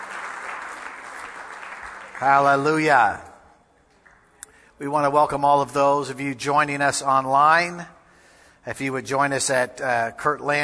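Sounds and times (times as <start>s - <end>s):
church audience applause for the worship team during a service: 0.0s - 3.0s
speech: 2.2s - 3.3s, 4.8s - 8.0s, 8.6s - 10.6s.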